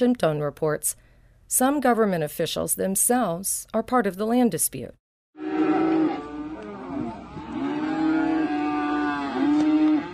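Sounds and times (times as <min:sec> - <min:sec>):
speech: 0:00.0 - 0:05.0
cattle of nomadic herders mooing in Cameroon's northwest region: 0:05.4 - 0:10.1.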